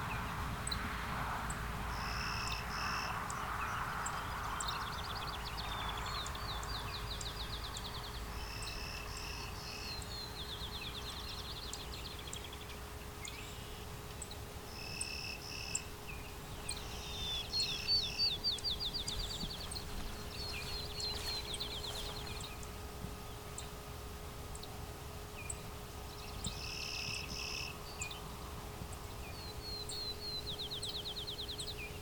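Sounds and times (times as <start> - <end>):
faint constant hum: 0.0 - 31.9
outdoor noise: 0.0 - 31.9
field sparrow singing: 3.7 - 22.7, 25.4 - 28.2, 28.9 - 31.9.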